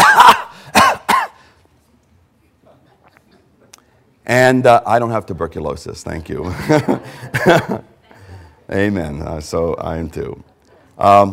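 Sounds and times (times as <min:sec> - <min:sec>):
harsh coughs: 0:00.0 - 0:01.4
speech: 0:04.3 - 0:07.9, 0:08.7 - 0:11.3
laughter: 0:06.4 - 0:08.5.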